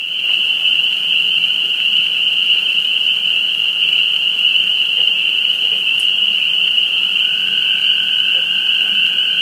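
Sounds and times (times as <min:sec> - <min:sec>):
spring peepers in a dense chorus: 0:00.1 - 0:09.4.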